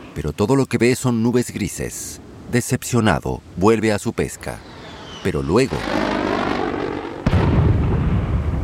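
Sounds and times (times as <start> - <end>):
speech: 0.2 - 6.0
jet airplane flying overhead: 4.4 - 7.4
sudden loud explosion with deep rumbling blast: 5.1 - 8.6.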